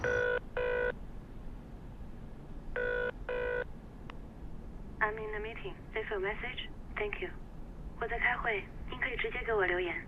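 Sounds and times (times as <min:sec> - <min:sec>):
steady low hum: 0:00.0 - 0:10.0
telephone ringing with short electronic trills on a long-distance call: 0:02.8 - 0:03.7
speech: 0:05.6 - 0:10.0.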